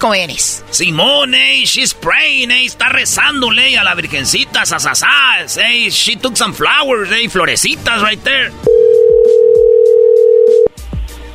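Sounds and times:
speech: 0.0 - 8.8
telephone dial tone while placing a call: 8.7 - 10.7.

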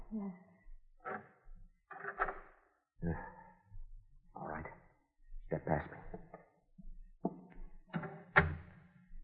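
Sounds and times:
speech: 0.1 - 1.3, 3.0 - 3.3, 5.5 - 6.0
door being pulled open with creaking hinges: 7.9 - 8.7.

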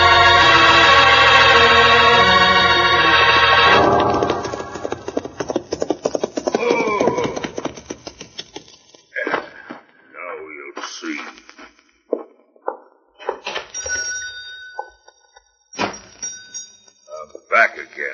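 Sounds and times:
sustained musical tones: 0.0 - 5.1
horses galloping with hooves clip-clopping: 3.6 - 9.2.

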